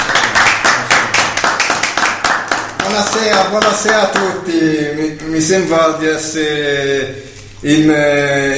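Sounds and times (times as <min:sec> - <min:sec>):
audience applause: 0:00.0 - 0:04.0
speech: 0:02.9 - 0:08.5.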